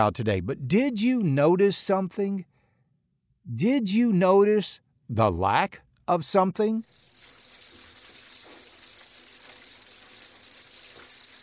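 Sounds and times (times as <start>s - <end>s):
speech: 0.0s - 2.6s, 3.4s - 7.1s
crickets chirping: 6.8s - 11.4s.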